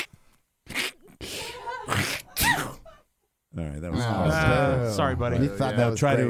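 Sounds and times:
person performing a deliberate sneeze on request: 0.7 - 2.8
speech: 3.6 - 6.2.

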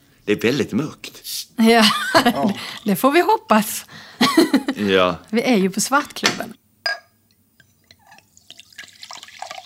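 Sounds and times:
speech: 0.2 - 6.6
laughter: 1.8 - 2.7, 4.2 - 5.0
glass clink: 6.3 - 9.6
liquid poured from a bottle into a glass in darkness: 7.8 - 9.6.

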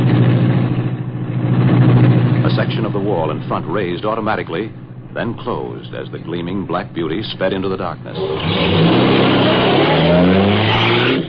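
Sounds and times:
car engine roaring to life: 0.0 - 11.2
speech: 2.6 - 11.2.

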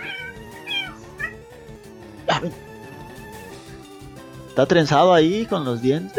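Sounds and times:
cat meowing and yowling: 0.0 - 1.4
speech: 2.3 - 2.7, 4.6 - 6.1.

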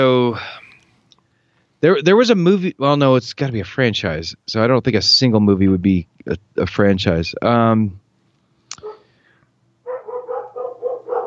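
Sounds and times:
speech: 1.8 - 8.0
dog yelp: 8.8 - 9.0, 9.9 - 11.2
dogs barking loudly: 8.8 - 9.1, 9.8 - 11.2.

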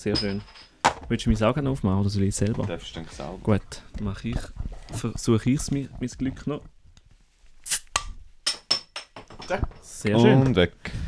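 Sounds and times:
speech: 0.0 - 6.7, 9.5 - 11.0
beer bottle pried open with a lighter: 7.7 - 8.1.

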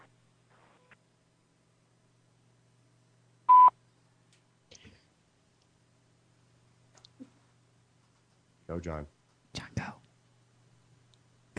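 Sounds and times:
short electronic beep: 3.5 - 3.7
speech: 8.7 - 9.6.

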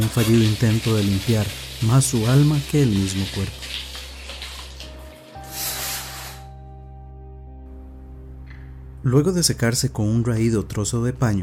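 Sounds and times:
speech: 0.0 - 3.8, 9.0 - 11.4
shower water running with a hissing spray: 0.0 - 6.5.

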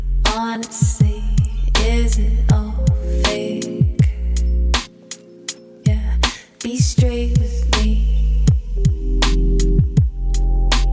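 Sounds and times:
speech: 0.4 - 1.2, 1.8 - 3.2
low throbbing pulses: 0.9 - 4.9, 5.9 - 6.3, 6.9 - 10.9
loud electrical hum: 1.0 - 10.9.

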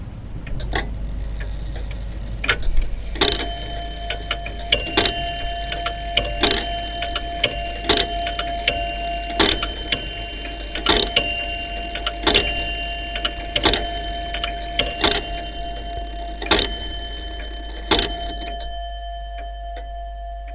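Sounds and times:
two grandfather clocks ticking in a house: 0.0 - 20.5
faint ringing metallic tones: 0.4 - 20.5.

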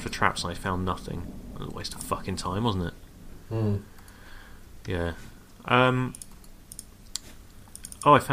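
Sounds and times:
speech: 0.1 - 3.9, 4.8 - 6.2, 8.0 - 8.3
person humming briefly: 3.5 - 3.9.

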